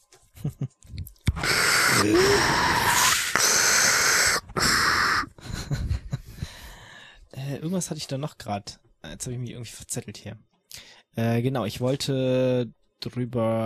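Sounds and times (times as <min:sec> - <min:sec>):
speech: 0:00.4 - 0:00.7, 0:02.0 - 0:02.7, 0:07.7 - 0:10.5, 0:11.2 - 0:13.6
heavy breathing with a rasping wheeze: 0:01.3 - 0:07.2.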